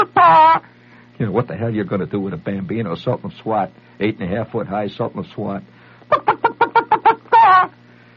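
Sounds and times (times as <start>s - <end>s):
person imitating chicken clucks and squawk: 0.0s - 0.6s, 6.1s - 7.8s
faint hum: 0.0s - 8.1s
speech: 0.2s - 6.6s.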